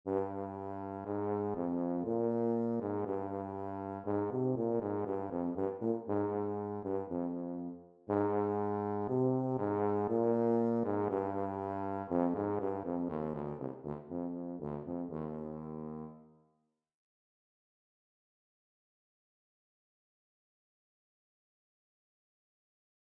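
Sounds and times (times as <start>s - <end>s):
tuba playing an etude: 0.1s - 16.4s.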